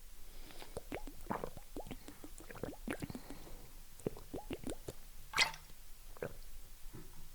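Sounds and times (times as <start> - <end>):
person sipping water: 0.4 - 5.5
slurp: 0.5 - 5.6.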